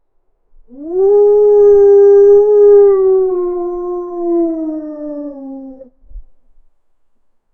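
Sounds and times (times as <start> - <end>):
wolves howling loudly: 0.7 - 5.9.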